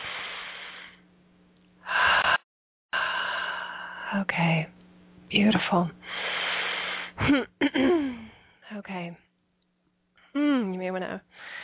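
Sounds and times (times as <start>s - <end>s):
deep breaths during a guided relaxation exercise: 0.0s - 1.0s, 1.8s - 4.1s, 6.0s - 7.2s, 8.0s - 8.6s, 11.3s - 11.6s
speech: 4.1s - 6.2s, 7.2s - 7.6s.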